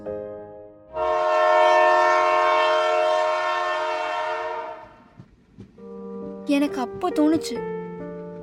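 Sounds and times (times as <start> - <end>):
train horn blaring: 0.9 - 5.2
rumbling rail noise: 0.9 - 8.4
speech: 6.5 - 7.8.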